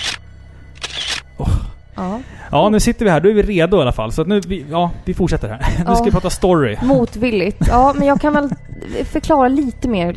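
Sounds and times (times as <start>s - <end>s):
camera shutter click: 0.0s - 0.2s, 0.8s - 1.3s
camera mechanical whir: 0.0s - 1.3s
speech: 1.4s - 10.1s
laughter: 5.6s - 9.0s.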